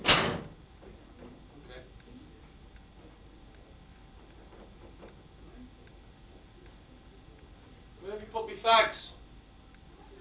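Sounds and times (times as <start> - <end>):
door pushed shut: 0.0 - 0.5
speech: 8.3 - 9.1.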